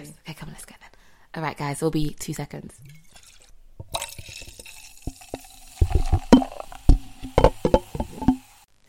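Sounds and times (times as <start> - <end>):
speech: 1.3 - 2.9
wine pouring into a glass: 2.8 - 8.6.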